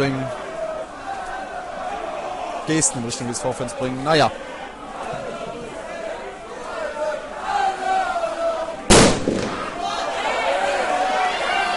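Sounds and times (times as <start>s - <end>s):
speech: 0.0s - 0.5s, 2.7s - 5.2s
roar of a large football stadium crowd: 0.0s - 11.7s
firecracker bang in a football stadium: 8.9s - 10.0s.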